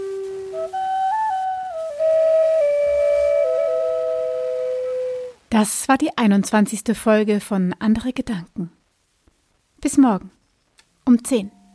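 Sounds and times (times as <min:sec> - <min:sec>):
breathy flute melody: 0:00.0 - 0:05.4
soft airy hiss: 0:00.0 - 0:11.7
speech: 0:05.5 - 0:08.8, 0:09.8 - 0:10.4, 0:11.1 - 0:11.6.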